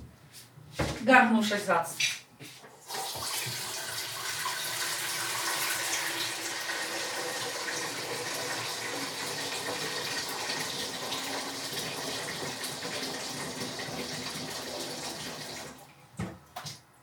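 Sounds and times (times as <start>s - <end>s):
speech: 1.0s - 2.1s
tap water filling a large pot: 2.8s - 15.9s.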